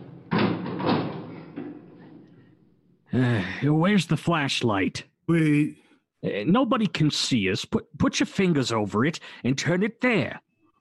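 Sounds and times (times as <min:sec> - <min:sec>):
door pushed open with a heavy thud: 0:00.0 - 0:01.8
speech: 0:03.1 - 0:10.4.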